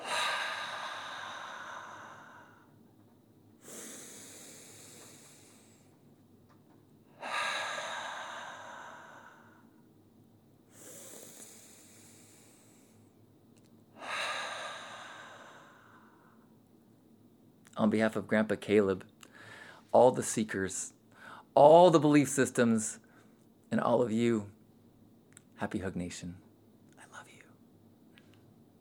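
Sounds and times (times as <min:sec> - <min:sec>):
slow breathing in through the nose and out through the mouth: 0:00.0 - 0:02.9, 0:03.6 - 0:06.1, 0:07.1 - 0:10.0, 0:10.6 - 0:13.2, 0:13.9 - 0:16.6, 0:19.2 - 0:19.9, 0:21.1 - 0:21.5
speech: 0:17.8 - 0:19.2, 0:19.9 - 0:21.0, 0:21.6 - 0:23.0, 0:23.7 - 0:24.5, 0:25.6 - 0:26.4.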